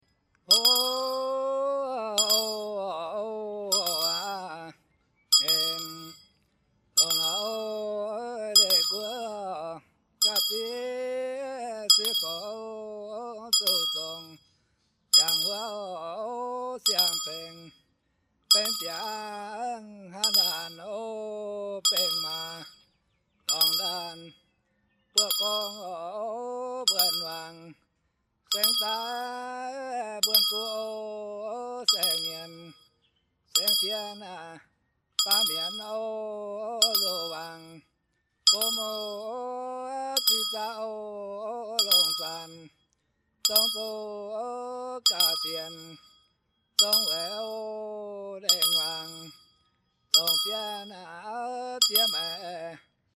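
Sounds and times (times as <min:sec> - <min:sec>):
bell: 0:00.4 - 0:01.4, 0:02.0 - 0:04.6, 0:05.3 - 0:09.4, 0:10.2 - 0:12.7, 0:13.5 - 0:14.5, 0:15.1 - 0:16.0, 0:16.8 - 0:17.9, 0:18.5 - 0:20.9, 0:21.8 - 0:22.9, 0:23.5 - 0:24.4, 0:25.2 - 0:26.1, 0:26.8 - 0:27.7, 0:28.5 - 0:31.1, 0:31.8 - 0:34.5, 0:35.2 - 0:36.2, 0:36.8 - 0:37.8, 0:38.5 - 0:41.0, 0:41.6 - 0:44.2, 0:45.0 - 0:47.8, 0:48.4 - 0:51.2, 0:51.8 - 0:52.8
person singing a Yao song: 0:00.5 - 0:04.8, 0:07.0 - 0:14.4, 0:15.2 - 0:17.7, 0:18.5 - 0:22.7, 0:23.5 - 0:24.3, 0:25.2 - 0:27.8, 0:28.5 - 0:32.7, 0:33.6 - 0:34.6, 0:35.2 - 0:37.8, 0:38.5 - 0:42.7, 0:43.5 - 0:46.0, 0:46.8 - 0:49.3, 0:50.2 - 0:52.8.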